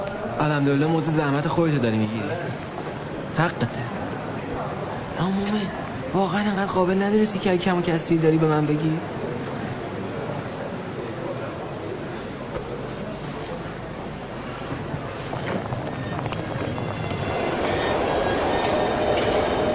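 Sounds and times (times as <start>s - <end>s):
faint indistinct voices: 0.0s - 19.7s
moving metro train interior rumbling: 0.0s - 19.7s
speech: 0.4s - 2.7s, 3.4s - 4.0s, 5.2s - 9.1s
metro train rail noise and clatter: 14.0s - 19.7s.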